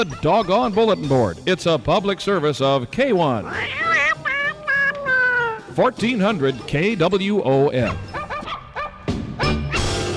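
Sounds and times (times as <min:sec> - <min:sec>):
speech: 0:00.0 - 0:03.9, 0:05.8 - 0:08.1
pitched dog barks yapping a quick tune: 0:03.6 - 0:05.8, 0:07.8 - 0:10.0.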